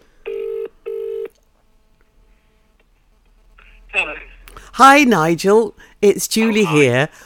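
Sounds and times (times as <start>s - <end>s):
telephone ringback tone on an outgoing call: 0.3s - 1.3s
speech: 4.8s - 7.2s.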